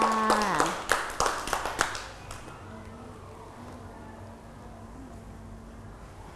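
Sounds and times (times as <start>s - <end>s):
small group of children clapping hands in an art activity: 0.0s - 2.5s.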